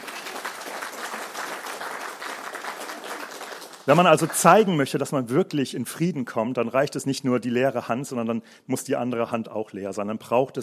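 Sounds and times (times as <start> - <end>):
audience applause: 0.0 - 4.7
speech: 3.9 - 10.6.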